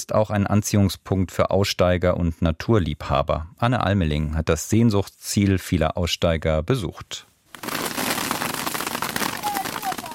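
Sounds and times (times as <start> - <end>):
speech: 0.0 - 7.8
dates shaken from a palm tree pelting a large plastic tarp at Siwa oasis in Egypt: 7.5 - 10.1.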